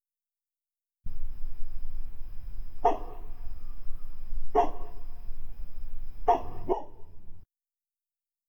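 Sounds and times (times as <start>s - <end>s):
low rumble: 1.1s - 7.4s
dog barking: 2.8s - 3.4s, 4.5s - 5.1s, 6.2s - 7.2s.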